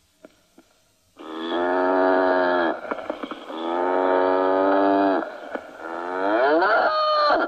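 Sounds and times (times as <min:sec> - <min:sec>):
cow mooing in long drawn-out calls: 0:01.2 - 0:07.0.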